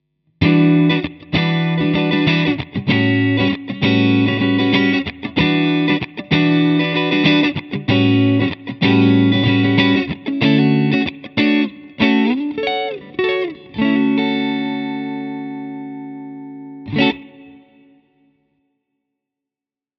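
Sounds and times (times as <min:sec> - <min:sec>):
Fender 335 guitar on single neck pickup: 0:00.4 - 0:18.1.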